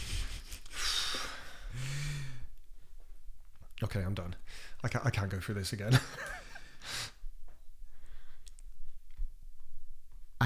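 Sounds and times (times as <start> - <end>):
person sniffling after crying: 0.0 - 2.5, 6.5 - 7.2
speech: 3.8 - 6.5.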